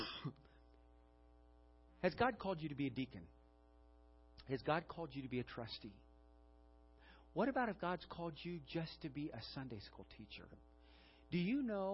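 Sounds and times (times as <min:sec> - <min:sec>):
person coughing: 0:00.0 - 0:00.6
quiet steady hum: 0:00.0 - 0:11.9
speech: 0:02.0 - 0:03.4, 0:04.5 - 0:06.0, 0:07.4 - 0:10.7, 0:11.3 - 0:11.9.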